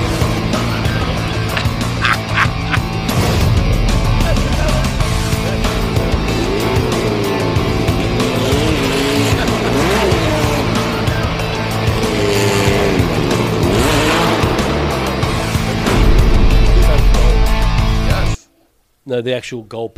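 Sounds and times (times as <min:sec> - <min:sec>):
laughter: 0:00.6 - 0:03.1, 0:08.9 - 0:10.8
sports car engine revving: 0:02.9 - 0:18.1
speech: 0:19.2 - 0:19.9.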